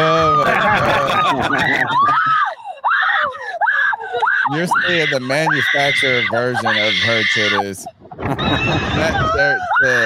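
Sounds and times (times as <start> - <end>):
laughter: 0.0 - 2.8, 8.1 - 10.0
person screaming in played-back video: 1.6 - 7.7, 8.8 - 10.0
speech: 4.5 - 10.0.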